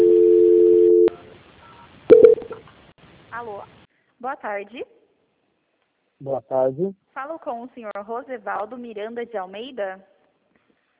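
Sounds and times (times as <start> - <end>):
steady telephone transfer tone on a bank call: 0.0 - 2.5
speech: 3.5 - 5.0, 6.2 - 10.1.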